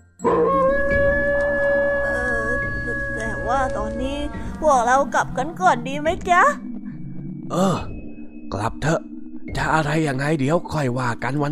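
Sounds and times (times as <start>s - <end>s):
dog howling: 0.2s - 4.0s
speech: 3.6s - 6.7s, 7.5s - 7.9s, 8.5s - 11.5s.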